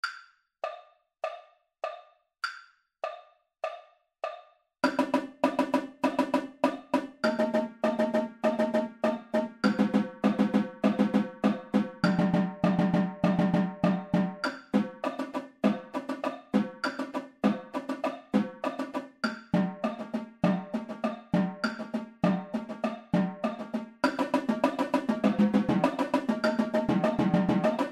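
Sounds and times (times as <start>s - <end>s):
tenor drum triple beat: 5.0s - 19.0s, 19.6s - 27.8s.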